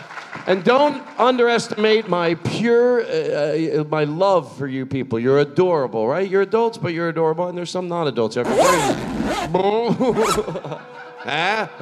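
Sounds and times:
speech: 0:00.5 - 0:11.8
voice imitating a zipper being pulled down: 0:08.4 - 0:10.6
laughter: 0:09.5 - 0:11.8.

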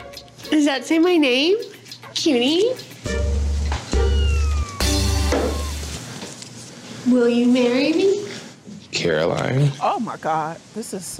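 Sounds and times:
speech: 0:00.5 - 0:03.2, 0:07.1 - 0:08.3, 0:08.9 - 0:11.1
cat meowing in a cat cafe: 0:03.9 - 0:06.0.

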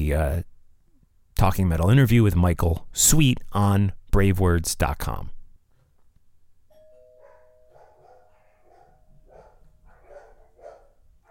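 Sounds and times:
speech: 0:00.0 - 0:00.5, 0:01.4 - 0:05.4
doorbell chiming: 0:06.7 - 0:09.9
dog barking: 0:07.2 - 0:11.2.

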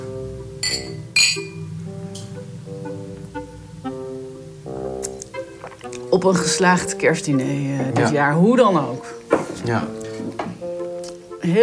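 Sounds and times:
warm humming background: 0:00.0 - 0:09.3
glasses clinking in a toast at a Christmas dinner: 0:00.6 - 0:01.6
speech: 0:06.1 - 0:10.0, 0:11.4 - 0:11.6.

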